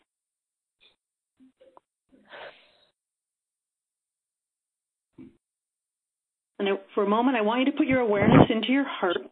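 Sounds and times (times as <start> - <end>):
deep breath in and out: 2.2 - 3.0
speech: 6.6 - 9.3.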